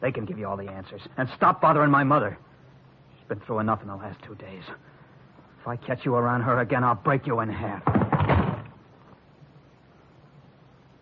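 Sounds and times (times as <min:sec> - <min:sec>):
speech: 0:00.0 - 0:02.5, 0:03.3 - 0:05.0, 0:05.6 - 0:08.4
door slamming shut with a heavy thud: 0:07.8 - 0:08.8.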